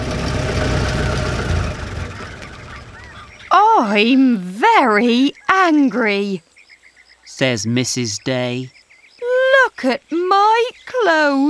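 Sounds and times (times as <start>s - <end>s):
truck engine idling: 0.0s - 4.8s
speech: 3.8s - 6.5s, 7.4s - 8.8s, 9.7s - 11.4s.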